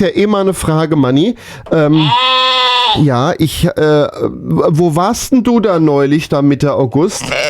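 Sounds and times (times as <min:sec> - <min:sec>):
speech: 0:00.0 - 0:07.4
Heidschnucke sheep bleating: 0:01.7 - 0:03.2, 0:07.1 - 0:07.4.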